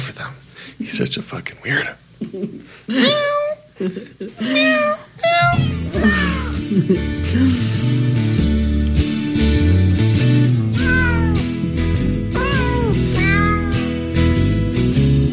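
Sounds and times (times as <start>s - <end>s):
speech: 0.2s - 8.4s
laughter: 2.2s - 4.9s, 6.0s - 7.8s
cat meows pitched into a jaunty Christmas melody: 3.0s - 3.7s, 4.4s - 6.7s, 10.7s - 14.2s
full bouncy Christmas music backing: 5.4s - 15.3s.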